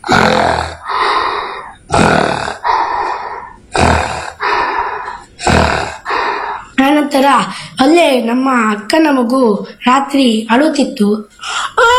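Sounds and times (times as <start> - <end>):
voice imitating an old man snoring in his sleep: 0.0 - 6.8
speech: 7.2 - 11.9.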